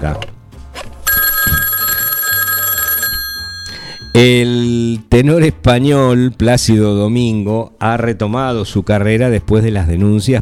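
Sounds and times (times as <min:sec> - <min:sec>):
speech: 0:00.0 - 0:00.3, 0:04.2 - 0:10.4
telephone bell ringing: 0:01.1 - 0:04.6.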